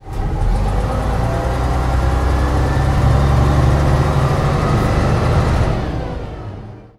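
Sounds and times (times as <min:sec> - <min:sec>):
MCW Metrobus bus: 0:00.0 - 0:06.9.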